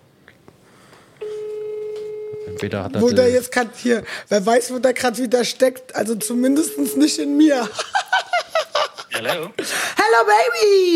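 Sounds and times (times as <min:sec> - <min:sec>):
faint noise: 0:00.0 - 0:10.9
telephone ring tone during an outgoing call: 0:01.2 - 0:03.4, 0:06.6 - 0:07.7
speech: 0:02.6 - 0:08.1, 0:09.2 - 0:10.9
laughter: 0:07.6 - 0:09.5.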